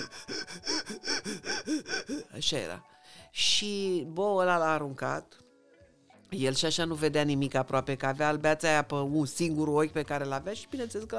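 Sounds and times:
person imitating the panting of a small bow-legged animal: 0.0s - 2.5s
speech: 1.3s - 5.4s, 6.3s - 11.1s.

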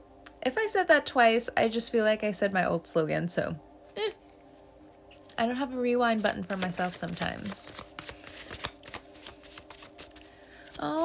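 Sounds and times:
speech: 0.4s - 4.1s, 5.4s - 8.1s, 10.8s - 11.0s
deck of tarot cards being shuffled: 6.1s - 11.0s.

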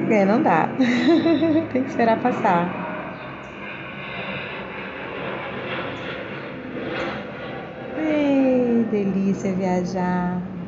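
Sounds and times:
airplane passing overhead: 0.0s - 10.6s
speech: 0.1s - 2.8s, 8.9s - 10.6s
laughter: 0.8s - 1.8s.

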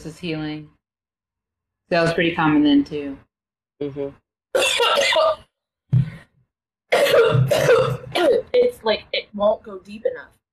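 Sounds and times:
speech: 0.0s - 0.8s, 1.9s - 5.4s, 6.9s - 10.4s
dry hacking cough from a cold: 4.6s - 5.4s, 6.9s - 8.4s.

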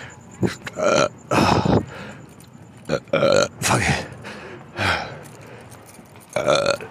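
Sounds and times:
loud burps: 0.4s - 1.8s, 2.8s - 4.1s, 6.3s - 6.9s.

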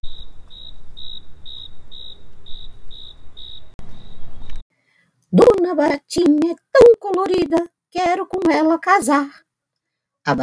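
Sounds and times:
cricket chirping: 0.0s - 4.6s
speech: 5.7s - 9.4s, 10.3s - 10.4s.

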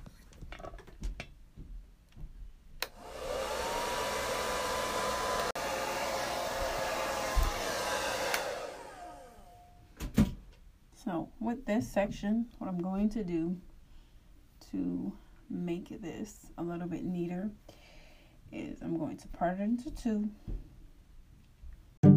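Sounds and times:
hair dryer blow-drying hair: 2.8s - 9.8s
speech: 11.1s - 13.7s, 14.8s - 17.8s, 18.5s - 20.7s.

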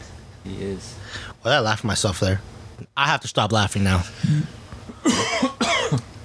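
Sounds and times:
speech: 0.4s - 6.0s
harsh coughs: 5.0s - 6.1s.

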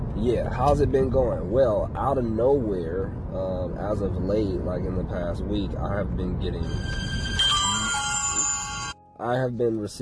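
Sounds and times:
speech: 0.2s - 7.1s, 9.2s - 10.0s
phone notification chime: 6.6s - 9.2s.

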